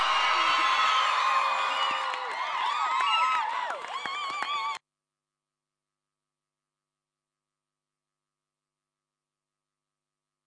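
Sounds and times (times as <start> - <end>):
large crowd cheering and whooping: 0.0 - 4.8
scattered claps: 0.0 - 4.8
shrill rising shouts: 0.0 - 4.8.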